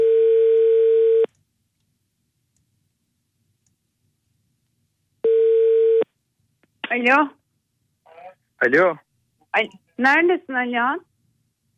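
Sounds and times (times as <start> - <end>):
telephone ringback tone while calling: 0.0 - 1.3, 5.2 - 6.0
speech: 7.0 - 7.4, 8.6 - 11.1.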